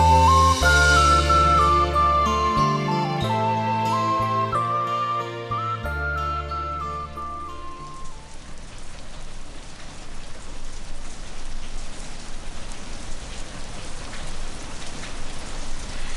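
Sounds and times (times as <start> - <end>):
steady rain pouring down in a dense continuous hiss: 0.0 - 16.1
raindrops pattering on a surface: 7.3 - 16.1.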